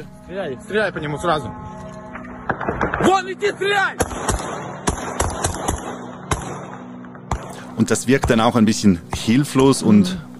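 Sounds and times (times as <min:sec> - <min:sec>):
speech: 0:00.0 - 0:01.8, 0:02.6 - 0:04.6, 0:07.8 - 0:10.3
police rifle shots fired skyward at a drone among apartment blocks: 0:04.0 - 0:07.6.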